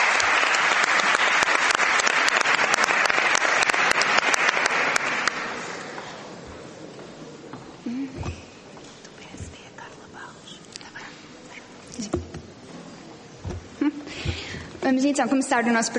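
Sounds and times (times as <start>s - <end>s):
audience applause for members of parliament: 0.0s - 6.4s
speech: 14.9s - 15.9s.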